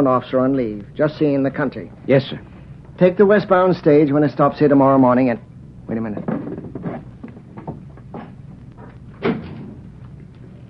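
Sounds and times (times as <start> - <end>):
speech: 0.0 - 6.4
wooden creaks and knocks: 6.2 - 9.8.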